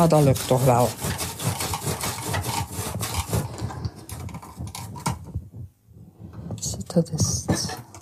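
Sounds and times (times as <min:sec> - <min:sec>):
speech: 0:00.0 - 0:01.2, 0:07.0 - 0:07.6
knife pressed hard through a firm fennel bulb: 0:00.0 - 0:03.6.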